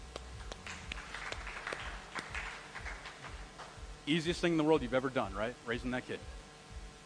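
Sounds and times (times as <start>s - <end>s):
crowd applauding: 0.1s - 3.8s
speech: 4.1s - 6.4s.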